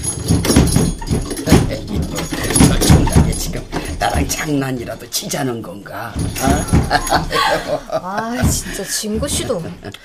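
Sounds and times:
knocking on a door: 0:00.2 - 0:04.5, 0:06.2 - 0:07.4, 0:08.4 - 0:10.0
speech: 0:04.5 - 0:10.0
laughter: 0:06.3 - 0:10.0.

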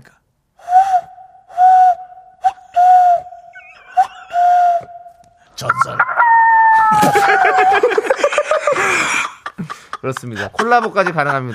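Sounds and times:
voice imitating a cuckoo call: 0:02.4 - 0:07.8
laughter: 0:03.5 - 0:05.1, 0:05.7 - 0:11.5
speech: 0:05.6 - 0:06.2, 0:06.9 - 0:09.2, 0:10.0 - 0:11.5.

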